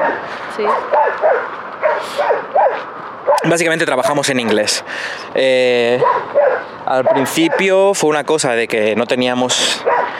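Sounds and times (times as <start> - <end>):
several dogs barking and yapping agitatedly: 0.0 - 3.6, 5.9 - 8.0, 9.6 - 10.1
speech: 0.6 - 10.0.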